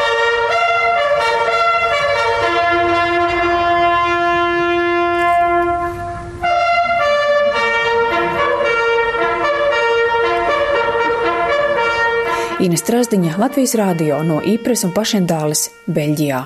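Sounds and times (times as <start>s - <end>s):
bugle playing at the nightly evening ceremony in Ypres Belgium: 0.0s - 16.4s
speech: 12.7s - 16.4s.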